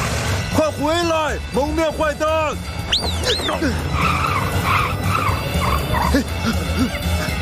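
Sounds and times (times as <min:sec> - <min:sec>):
speech: 0:00.8 - 0:04.8, 0:06.0 - 0:07.2
car tires skidding as the vehicle is driven erratically: 0:02.7 - 0:06.7.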